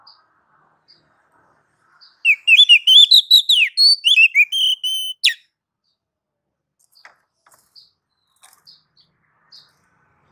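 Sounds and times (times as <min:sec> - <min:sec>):
female Oriental magpie-robin calling to the male: 0:02.2 - 0:05.4.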